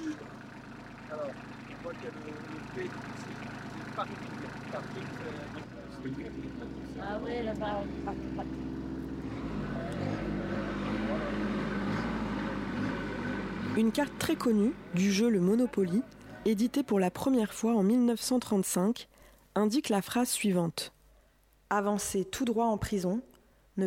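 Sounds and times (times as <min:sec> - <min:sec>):
voices murmuring: 0:00.0 - 0:17.8
tractor engine running: 0:00.0 - 0:18.3
speech: 0:01.1 - 0:08.8, 0:13.8 - 0:21.0, 0:21.7 - 0:23.8.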